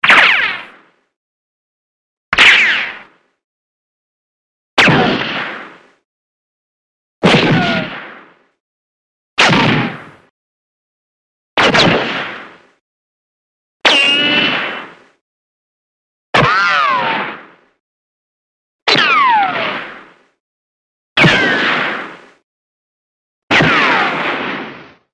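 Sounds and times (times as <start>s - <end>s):
classic ricochet: 0.0s - 0.9s, 2.4s - 3.2s, 4.8s - 6.0s, 7.2s - 8.4s, 9.4s - 10.3s, 11.6s - 12.8s, 13.8s - 15.2s, 16.4s - 17.6s, 18.9s - 20.2s, 21.2s - 22.4s, 23.5s - 25.0s.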